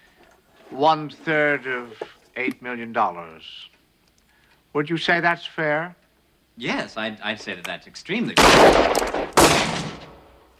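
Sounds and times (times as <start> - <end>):
speech: 0.8 - 3.7, 4.7 - 6.0, 6.6 - 9.2
gunshot fired in the dark: 8.4 - 10.4.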